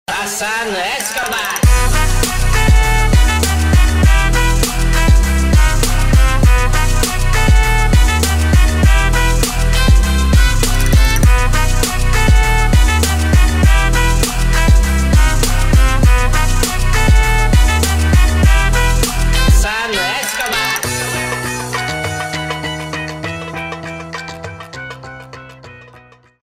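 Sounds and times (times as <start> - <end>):
trap music with bass: 0.1 - 24.3.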